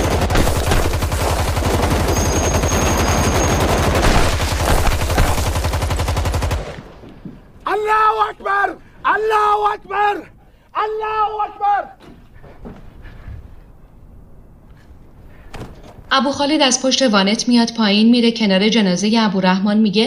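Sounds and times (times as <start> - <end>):
bursts of rapid gunfire: 0.0 - 7.0
man shouting loudly: 7.6 - 12.0
speech: 9.7 - 12.0, 16.1 - 20.0.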